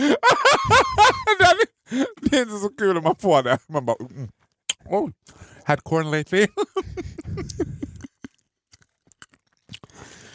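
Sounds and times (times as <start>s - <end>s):
laughter: 0.0s - 1.7s, 6.4s - 8.3s
speech: 2.4s - 7.8s
wet smacking and chewing of an orange: 7.4s - 10.3s.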